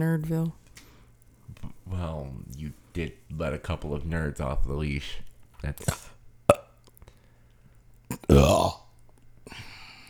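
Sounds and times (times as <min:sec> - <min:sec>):
speech: 0:00.0 - 0:00.6, 0:01.9 - 0:06.1, 0:08.3 - 0:08.8
cat burping: 0:05.8 - 0:06.8, 0:08.1 - 0:08.9.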